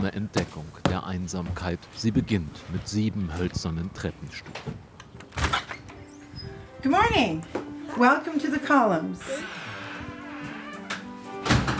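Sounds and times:
speech: 0:00.0 - 0:04.9, 0:06.8 - 0:09.6
door of a red-brick bed and breakfast in Winnipeg opening with knock and thud: 0:04.5 - 0:07.2, 0:09.8 - 0:11.7.

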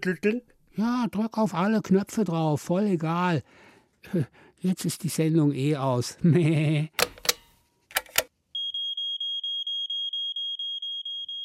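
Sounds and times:
speech: 0:00.0 - 0:07.0
clattering clicks: 0:07.0 - 0:08.3
electronic alarm with high-pitched beeps: 0:08.6 - 0:11.4.

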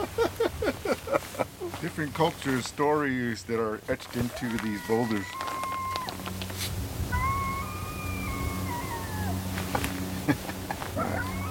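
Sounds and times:
laughter: 0:00.0 - 0:02.0, 0:08.5 - 0:11.5
speech: 0:01.9 - 0:05.4
coyote howling across a canyon: 0:04.2 - 0:11.5.

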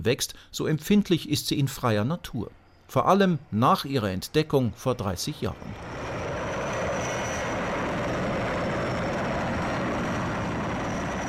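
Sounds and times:
speech: 0:00.0 - 0:06.0
helicopter engine and rotor roaring in flight: 0:04.9 - 0:11.2.

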